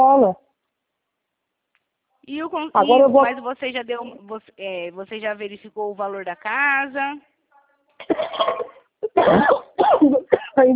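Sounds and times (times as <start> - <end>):
speech: 2.3 - 7.3, 8.0 - 10.7
person sick with Covid coughing: 8.0 - 10.7.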